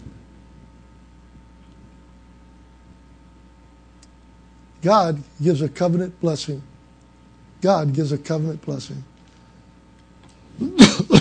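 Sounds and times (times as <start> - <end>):
speech: 4.8 - 6.7, 7.6 - 9.1
harsh cough: 10.6 - 11.1
raspy throat clearing: 10.6 - 11.1.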